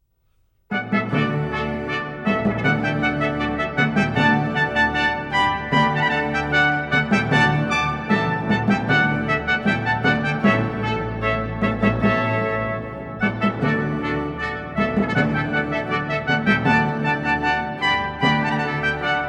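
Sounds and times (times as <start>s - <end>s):
baroque trumpet fanfare: 0.7s - 19.2s.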